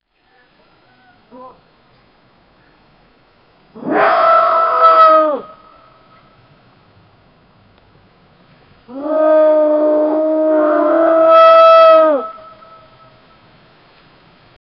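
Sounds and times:
hyenas roaring: 3.8 - 5.6, 8.9 - 12.4.

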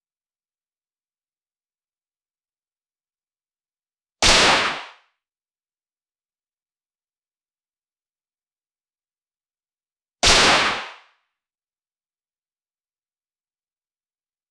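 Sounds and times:
Kar98 rifle single shot: 4.2 - 4.9, 10.2 - 10.9.

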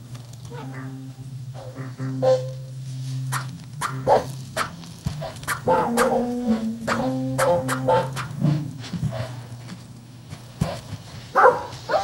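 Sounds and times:
light playful acoustic music: 0.5 - 9.2.

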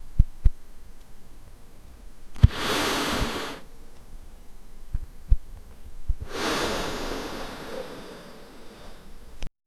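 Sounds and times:
pillow being inflated: 2.4 - 3.7, 6.2 - 9.4.

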